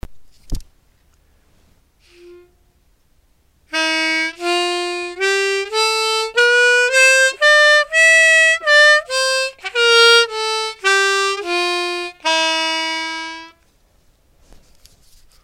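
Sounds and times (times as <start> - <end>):
harmonica playing in Sikah maqam: 2.0 - 2.6, 3.7 - 13.6.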